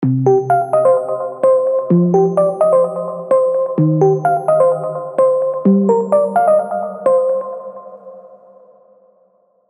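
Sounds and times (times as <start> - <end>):
prog synth arpeggios in C minor: 0.0 - 7.6.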